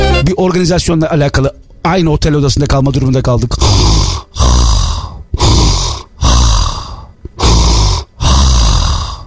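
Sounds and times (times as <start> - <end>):
speech: 0.3 - 4.5
voice imitating a man's loud rasping snoring: 3.6 - 9.2.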